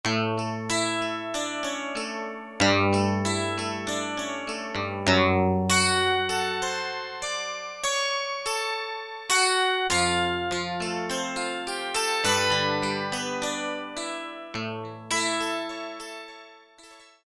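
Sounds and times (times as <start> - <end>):
Casio VZ-10M synthesizer 12 string internal factory combi tone: 0.1 - 8.6, 9.3 - 15.8.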